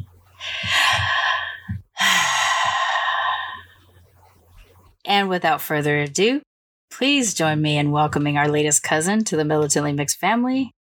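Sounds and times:
person drawing long deep breaths: 0.4 - 3.9
speech: 5.2 - 10.8.

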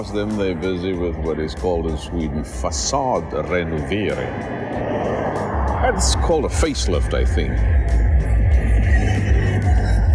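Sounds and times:
speech: 0.0 - 8.0
booming bass music from a small passing car: 0.0 - 10.1
small car passing by: 1.6 - 9.4.

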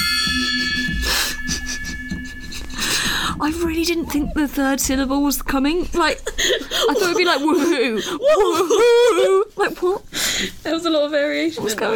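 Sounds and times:
gong ringing with shimmering metallic tone: 0.0 - 4.2
soft rhythmic thuds: 0.0 - 10.2
speech: 3.4 - 11.9.

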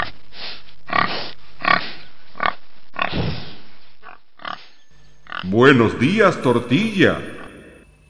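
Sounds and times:
fat pig grunting and snorting while sleeping in the sun: 0.9 - 5.5
speech: 5.5 - 7.4.

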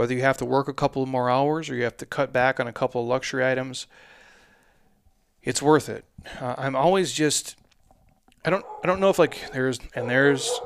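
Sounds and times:
speech: 0.0 - 4.2, 5.4 - 7.6, 8.4 - 10.6
dog barking and yowling: 8.5 - 10.6.

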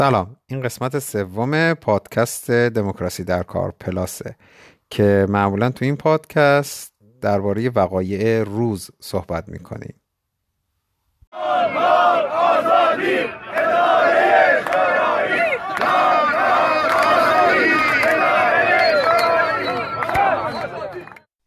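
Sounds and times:
speech: 0.0 - 10.0
crowd of striking Haft Tappeh sugarcane company workers chanting in protest: 11.3 - 21.2.

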